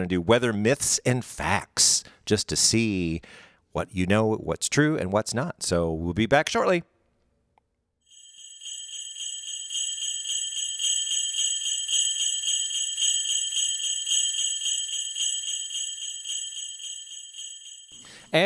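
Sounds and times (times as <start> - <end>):
speech: 0.0 - 6.9
sleigh bells jingling: 8.1 - 18.4.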